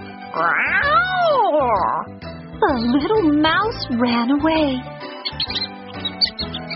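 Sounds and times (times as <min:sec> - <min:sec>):
black cat meowing: 0:00.3 - 0:01.5
speech: 0:00.4 - 0:00.9, 0:01.5 - 0:05.6.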